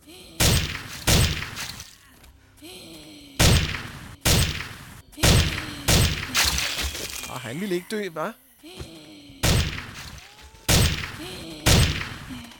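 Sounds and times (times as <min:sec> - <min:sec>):
quiet video game sounds: 0:00.0 - 0:12.5
shotgun firing in a video game: 0:00.4 - 0:01.8, 0:03.4 - 0:06.6, 0:09.4 - 0:12.5
speech: 0:07.5 - 0:08.9.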